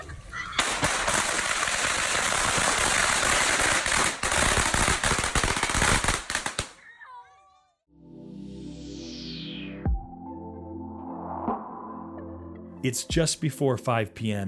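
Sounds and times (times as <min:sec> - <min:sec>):
long string of firecrackers crackling and banging for Chinese New Year: 0:00.0 - 0:06.8
speech: 0:12.8 - 0:14.4.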